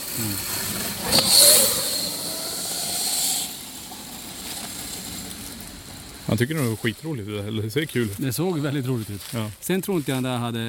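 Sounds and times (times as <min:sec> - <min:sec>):
motorcycle driving past on its second pass: 0:00.0 - 0:05.4
speech: 0:00.2 - 0:00.5, 0:06.3 - 0:10.6.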